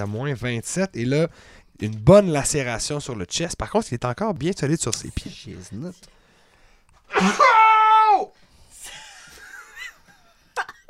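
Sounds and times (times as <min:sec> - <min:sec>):
speech: 0:00.0 - 0:06.2, 0:07.1 - 0:07.6
short breaths: 0:01.3 - 0:01.8, 0:06.1 - 0:07.1
voice imitating a pained cry: 0:07.1 - 0:08.3.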